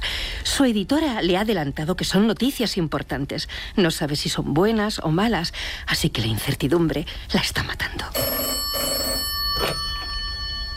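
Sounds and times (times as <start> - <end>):
speech: 0.4 - 9.9
telephone ringing with a bell-like trill: 8.2 - 10.7.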